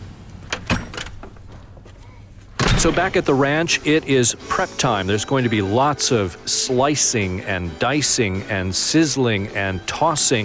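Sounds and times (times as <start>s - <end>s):
car doors thudding shut as people climb into a car: 2.6s - 3.3s
speech: 2.8s - 10.4s.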